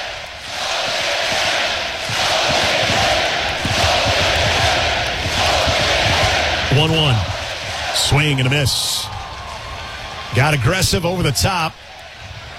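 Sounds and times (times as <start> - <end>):
large baseball stadium crowd roaring and cheering: 0.0 - 12.5
speech: 8.1 - 9.1, 10.3 - 11.8.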